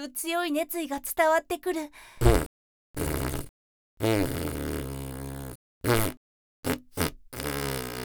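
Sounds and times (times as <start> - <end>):
speech: 0.0 - 2.5
farts: 2.2 - 8.0.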